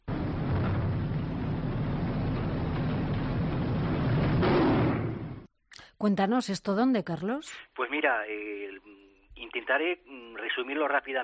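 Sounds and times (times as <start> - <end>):
rumbling roar said to be bombs exploding in a psychophony recording: 0.0 - 5.5
speech: 6.0 - 11.2.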